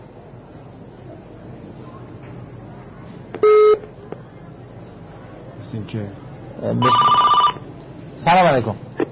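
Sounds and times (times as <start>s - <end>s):
faint murmur: 0.0s - 9.1s
short steady telephone beep: 3.4s - 3.8s
speech: 5.7s - 7.2s, 8.2s - 8.9s
warbling telephone ring of an incoming call: 6.8s - 7.6s.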